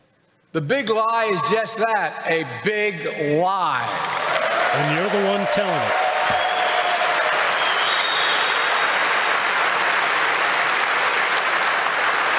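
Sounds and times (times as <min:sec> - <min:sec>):
speech: 0:00.5 - 0:06.5
crowd clapping and applauding: 0:03.8 - 0:12.3.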